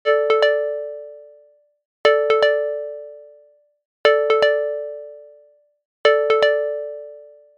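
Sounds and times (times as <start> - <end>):
bell ringtone: 0.1 - 1.5, 2.1 - 3.4, 4.1 - 5.5, 6.1 - 7.5.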